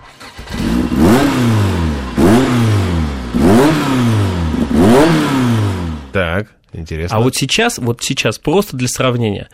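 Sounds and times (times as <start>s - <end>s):
Opel Kadett rally car engine starting and revving: 0.0s - 6.2s
speech: 6.2s - 9.5s.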